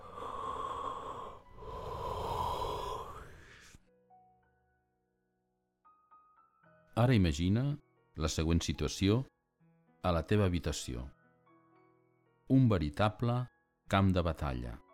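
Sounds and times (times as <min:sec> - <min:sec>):
deep breathing: 0:00.0 - 0:03.8
person yawning: 0:00.0 - 0:03.8
speech: 0:07.0 - 0:09.3, 0:10.0 - 0:11.2, 0:12.5 - 0:14.8.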